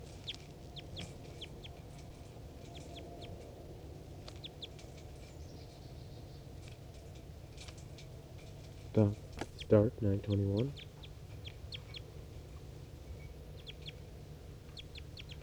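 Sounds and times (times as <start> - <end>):
wild bird chirps used as a decoy: 0.0 - 3.4, 4.2 - 6.5, 9.0 - 15.4
speech: 9.0 - 10.9.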